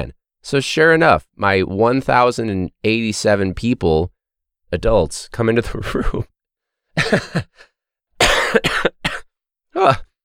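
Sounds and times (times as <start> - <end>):
speech: 0.0 - 4.1, 4.7 - 6.3, 7.0 - 7.7, 9.8 - 10.1
person coughing: 7.0 - 7.6, 8.2 - 10.0
person laughing: 7.0 - 7.7.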